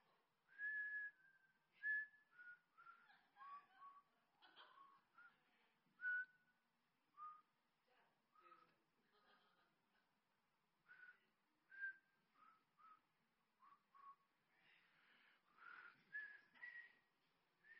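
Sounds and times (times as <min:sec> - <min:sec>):
person whistling a slow hymn melody: 0:00.5 - 0:04.1, 0:06.0 - 0:06.5, 0:07.2 - 0:07.5, 0:10.9 - 0:14.3, 0:15.6 - 0:17.7.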